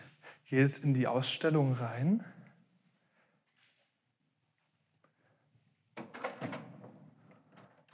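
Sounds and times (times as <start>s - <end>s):
speech: 0.5s - 2.4s
locked museum exhibition door rattling as its handle is yanked: 6.0s - 7.9s.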